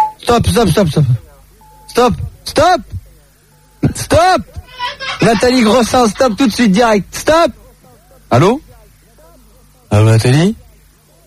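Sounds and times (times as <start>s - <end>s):
telephone answering service beep tone: 0.0s - 0.2s, 1.6s - 2.0s
speech: 0.3s - 1.2s, 1.9s - 3.0s, 3.9s - 7.6s, 8.3s - 8.6s, 9.9s - 10.6s
person talking animatedly up: 4.2s - 7.3s.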